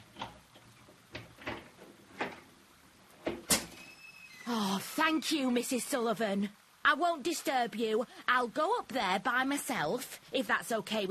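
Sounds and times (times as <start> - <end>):
door lock and handle clicking and rattling: 0.2 - 2.6
speech: 4.5 - 11.1.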